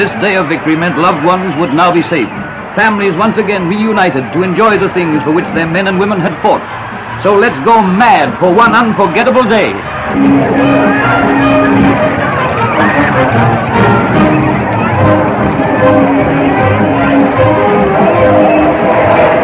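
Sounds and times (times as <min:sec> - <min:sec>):
speech: 0:00.0 - 0:12.2, 0:12.8 - 0:14.2
dense crowd yelling and cheering: 0:00.0 - 0:19.4.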